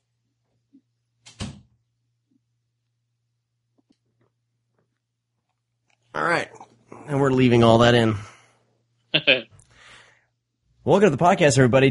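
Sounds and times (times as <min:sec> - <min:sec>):
loud rattling thump of a door opened to let in a dog: 0:01.3 - 0:01.7
speech: 0:06.2 - 0:08.3, 0:10.9 - 0:11.8.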